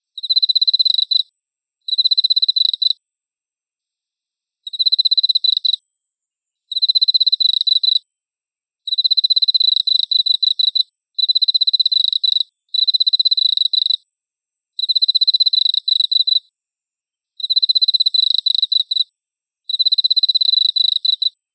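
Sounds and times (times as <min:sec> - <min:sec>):
Emma field cricket chirping: 0:00.2 - 0:01.3, 0:01.9 - 0:03.0, 0:04.6 - 0:08.1, 0:08.9 - 0:14.0, 0:14.8 - 0:16.5, 0:17.4 - 0:19.1, 0:19.7 - 0:21.4.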